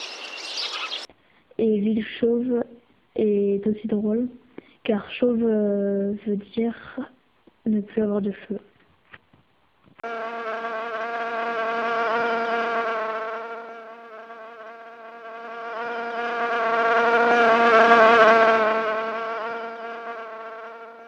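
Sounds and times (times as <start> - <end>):
speech: 1.6 - 8.7
housefly buzzing: 10.0 - 21.0.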